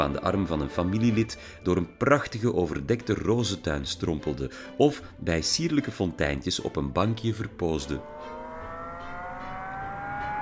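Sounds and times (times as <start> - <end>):
speech: 0.0 - 8.4
car engine revving loudly: 8.0 - 10.4.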